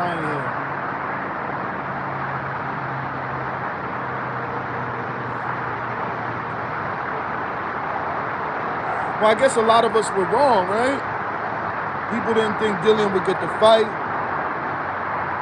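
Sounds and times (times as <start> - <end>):
faint low engine hum: 0.0 - 1.4, 2.0 - 14.2
road traffic roar of passing cars: 0.0 - 15.4
speech: 9.2 - 11.1, 12.1 - 14.0.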